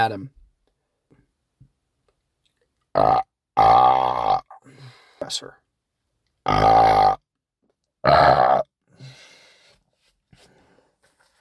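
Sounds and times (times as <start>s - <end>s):
speech: 0.0s - 0.4s, 3.0s - 5.6s, 6.4s - 7.2s, 8.0s - 8.7s
person burping: 2.9s - 4.6s, 6.4s - 7.2s, 8.0s - 8.7s.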